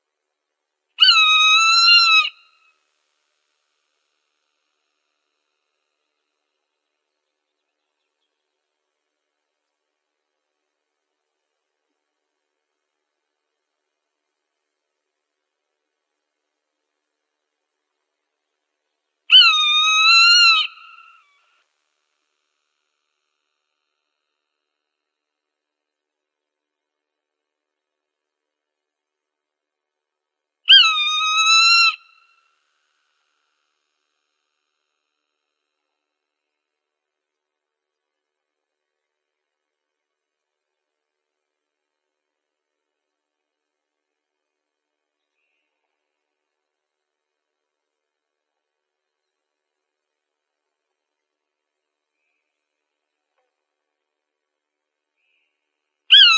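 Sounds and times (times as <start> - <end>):
Swainson's Hawk calling: 1.0 - 2.6, 19.3 - 21.3, 30.7 - 32.3, 56.1 - 56.3.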